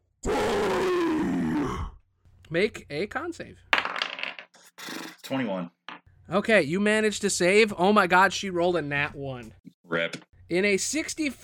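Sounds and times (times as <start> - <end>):
giant monster roaring: 0.2 - 2.0
speech: 2.5 - 3.7, 4.8 - 11.4.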